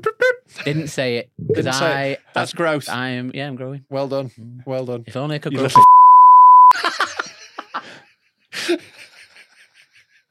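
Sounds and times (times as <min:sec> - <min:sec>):
speech: 0:00.0 - 0:06.1, 0:08.6 - 0:09.0
censor bleep: 0:05.8 - 0:06.8
rhythmic laughter: 0:06.7 - 0:10.3.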